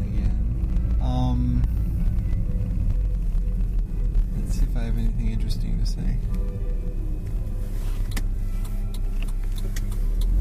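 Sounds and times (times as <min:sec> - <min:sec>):
car interior engine and road drone while driving: 0:00.0 - 0:10.4
speech: 0:05.8 - 0:06.7.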